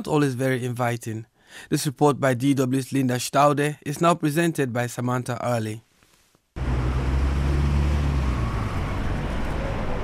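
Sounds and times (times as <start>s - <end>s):
speech: 0.0s - 5.9s
idling and crawling engines of cars and minibuses in a city centre traffic jam: 6.6s - 10.0s.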